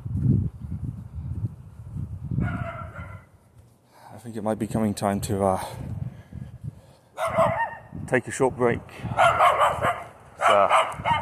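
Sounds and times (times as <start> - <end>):
dog barking: 2.4 - 3.3, 7.2 - 7.9, 9.2 - 11.2
speech: 4.2 - 6.0, 8.1 - 9.9, 10.5 - 11.2.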